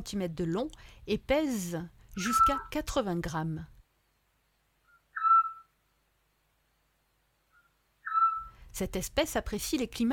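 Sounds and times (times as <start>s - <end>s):
speech: 0.0s - 3.7s, 8.8s - 10.1s
Eurasian scops owl whistled note: 2.2s - 2.8s, 4.9s - 5.8s, 7.5s - 8.6s.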